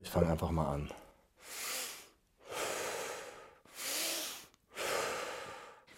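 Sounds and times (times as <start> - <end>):
speech: 0.0 - 1.0
rapid forceful breathing exercise: 1.4 - 5.9.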